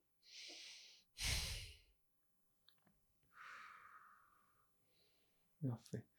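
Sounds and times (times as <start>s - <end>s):
woman sitting with eyes closed breathing slowly and deeply: 0.3s - 1.8s, 3.3s - 5.2s
speech: 5.6s - 6.1s.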